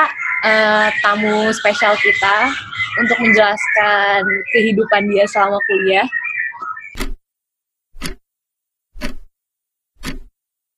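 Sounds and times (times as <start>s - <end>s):
bird warbling and chirping: 0.0s - 7.2s
speech: 0.4s - 6.2s.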